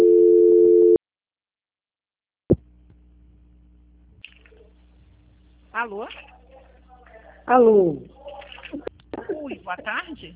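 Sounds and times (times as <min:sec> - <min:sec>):
steady telephone line tone during a call transfer: 0:00.0 - 0:01.0
faint constant low hum on the telephone line: 0:02.5 - 0:10.3
speech: 0:05.8 - 0:06.3, 0:07.4 - 0:08.9, 0:09.5 - 0:10.3.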